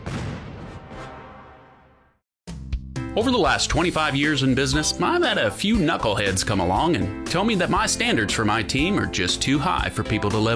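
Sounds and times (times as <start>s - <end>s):
fireworks exploding: 0.0s - 1.4s
speech: 3.2s - 10.5s.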